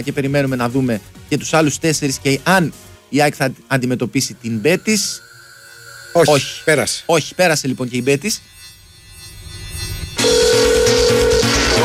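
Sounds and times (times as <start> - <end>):
speech: 0.0 - 5.2, 6.1 - 8.6
telephone ringing: 4.4 - 11.8.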